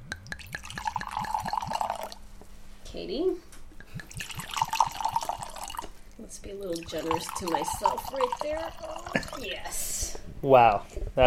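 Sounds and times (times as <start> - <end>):
red wine poured from a bottle: 0.0 - 2.2, 3.8 - 6.0, 6.8 - 9.6
glass ringing as it fills with red wine: 0.4 - 2.2, 3.9 - 5.9, 6.7 - 9.5
speech: 3.0 - 3.5, 6.3 - 11.2.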